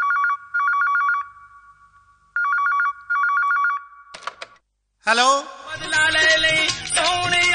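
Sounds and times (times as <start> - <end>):
telephone ringing: 0.0 - 1.8, 2.4 - 4.6
telephone handset clatter as if picked up: 4.2 - 4.6
speech: 5.1 - 7.4.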